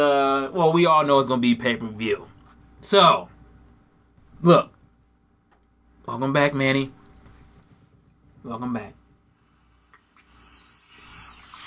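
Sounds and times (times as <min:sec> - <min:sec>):
speech: 0:00.0 - 0:03.3, 0:04.4 - 0:04.8, 0:06.1 - 0:07.0, 0:08.4 - 0:09.0
crickets chirping: 0:09.1 - 0:11.6.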